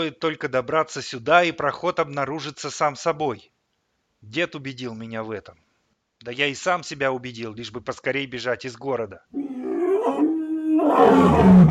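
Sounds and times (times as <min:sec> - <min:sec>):
speech: 0:00.0 - 0:03.5, 0:04.2 - 0:05.6, 0:06.2 - 0:09.4, 0:10.9 - 0:11.6
low roar rolling over a snowy plain: 0:09.4 - 0:11.6.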